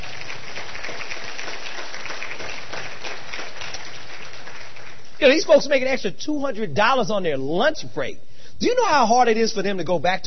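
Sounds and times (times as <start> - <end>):
crowd applauding: 0.0 - 5.6
speech: 5.2 - 10.2.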